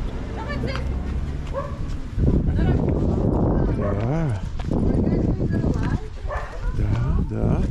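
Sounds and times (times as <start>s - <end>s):
busy noisy outdoor background: 0.0s - 7.6s
people talking: 0.3s - 1.0s, 2.4s - 7.6s
dog barking and yipping: 1.5s - 1.9s, 3.8s - 4.1s, 6.3s - 6.8s.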